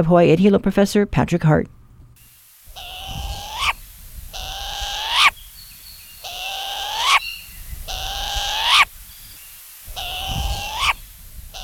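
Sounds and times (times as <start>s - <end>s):
speech: 0.0s - 1.8s
Hawaiian short-eared owl giving raspy rising calls: 2.6s - 11.6s.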